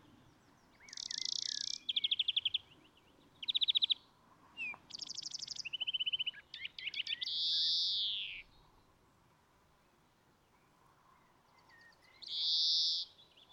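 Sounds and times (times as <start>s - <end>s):
European greenfinch Chloris chloris song: 0.0s - 8.9s, 10.4s - 13.5s.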